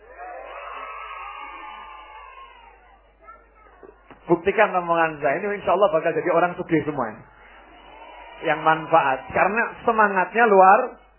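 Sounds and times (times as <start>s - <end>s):
large audience shouting and cheering in response to a speaker's question: 0.0s - 3.4s, 7.3s - 11.0s
speech: 4.3s - 7.3s, 8.4s - 11.0s.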